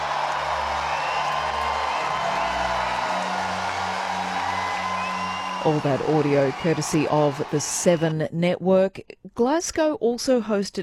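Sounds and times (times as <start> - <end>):
huge stadium crowd in Glasgow roaring and cheering: 0.0 - 8.2
speech: 5.6 - 10.8.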